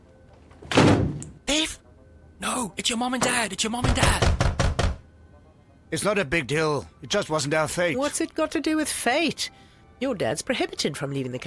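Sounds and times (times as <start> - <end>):
door opened with a dull thunk and brief rattle: 0.6 - 1.3
speech: 2.6 - 4.4, 5.9 - 11.4.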